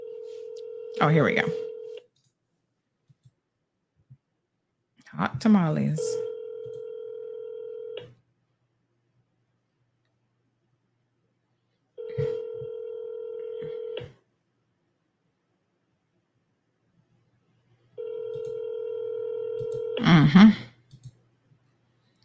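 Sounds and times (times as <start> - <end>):
telephone line tone with harmonic bands: 0.0 - 2.0, 6.0 - 8.1, 12.0 - 14.1, 18.0 - 20.0
speech: 1.0 - 1.7, 5.2 - 6.3.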